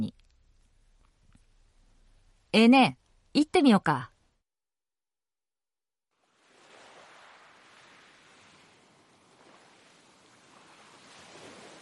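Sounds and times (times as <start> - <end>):
speech: 2.5 - 4.1
small waves lapping on a beach: 6.1 - 11.7.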